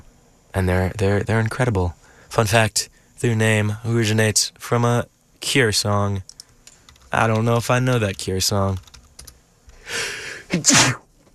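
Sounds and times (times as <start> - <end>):
speech: 0.6 - 6.3, 7.1 - 8.9, 9.9 - 11.0
person sneezing: 9.9 - 11.0.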